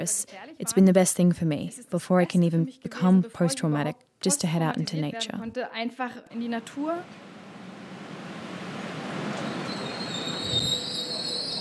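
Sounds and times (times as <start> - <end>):
speech: 0.0 - 7.3
rumble of a train travelling from Asker to Oslo in Norway: 6.6 - 11.5
train wheels squealing on rails: 7.5 - 11.5.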